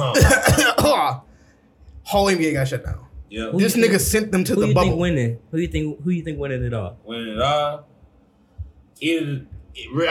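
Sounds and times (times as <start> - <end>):
person imitating coughing into a microphone: 0.0 - 1.2
speech: 2.1 - 7.9, 9.0 - 10.1.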